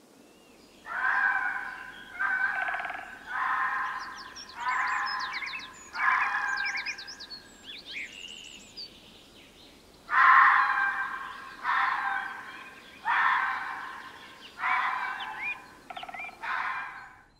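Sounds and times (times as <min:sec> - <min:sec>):
fox calling: 0:00.9 - 0:07.3, 0:10.1 - 0:17.3.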